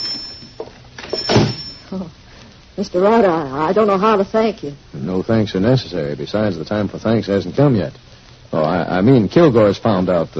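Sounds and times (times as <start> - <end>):
door being opened: 1.0 - 1.8
speech: 1.9 - 2.2, 2.8 - 10.3.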